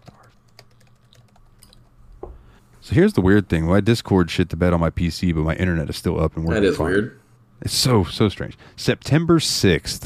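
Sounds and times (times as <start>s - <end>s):
typing on a computer keyboard: 0.0s - 1.9s
speech: 2.8s - 10.0s.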